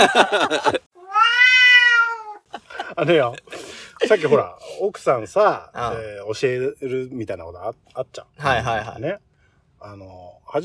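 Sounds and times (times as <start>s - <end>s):
laughter: 0.0s - 0.8s, 2.5s - 4.5s
speech: 0.0s - 1.3s, 3.0s - 10.6s
cat meowing: 1.0s - 2.5s.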